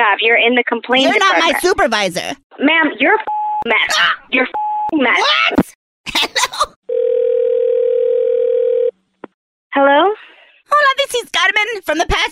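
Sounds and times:
speech: 0.2 - 6.7, 9.8 - 12.3
steady telephone dial tone after call disconnects: 6.9 - 8.9.

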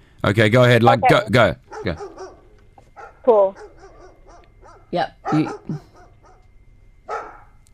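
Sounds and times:
faint low hum: 0.0 - 7.7
speech: 0.2 - 2.1, 3.2 - 3.7, 4.9 - 5.9
person imitating dog barks and yips: 0.9 - 2.0, 5.3 - 5.9.

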